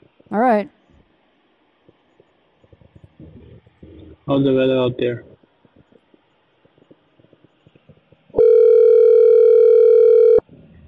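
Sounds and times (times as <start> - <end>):
speech: 0.3 - 0.8, 4.3 - 5.3
faint murmur: 1.9 - 8.2
telephone ringing with a steady electronic tone: 8.4 - 10.4.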